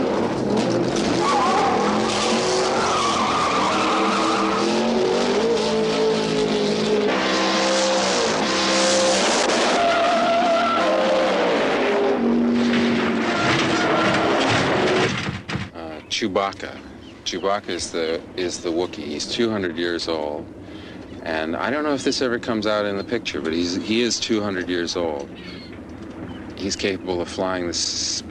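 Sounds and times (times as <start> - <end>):
drag racing car tires squealing: 0.0 - 15.2
drag racing car engines revving: 0.0 - 15.3
speech: 16.2 - 20.6, 21.2 - 25.6, 26.6 - 28.2.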